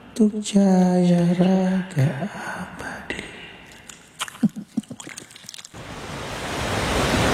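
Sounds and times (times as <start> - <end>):
speech: 0.2 - 2.8
ocean surf on a beach strewn with plastic litter: 5.8 - 7.3.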